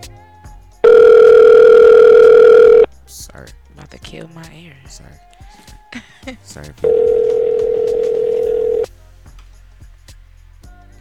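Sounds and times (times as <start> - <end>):
telephone dial tone on a phone line: 0.8 - 2.9, 6.9 - 8.9
speech: 4.2 - 8.2.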